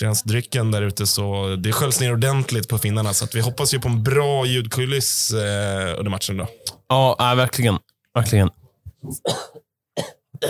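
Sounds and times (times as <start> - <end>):
speech: 0.0 - 10.4
person coughing: 9.0 - 10.4.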